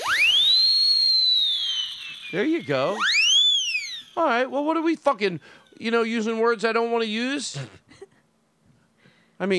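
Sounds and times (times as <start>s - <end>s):
loud shrill whistle blast with reverb: 0.0s - 4.9s
speech: 2.3s - 3.1s, 4.2s - 8.0s, 9.4s - 9.5s.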